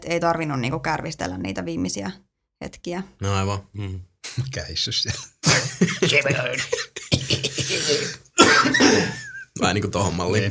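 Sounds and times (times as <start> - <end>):
speech: 0.0 - 10.4
laughter: 4.3 - 9.6
person coughing harshly: 5.1 - 9.4.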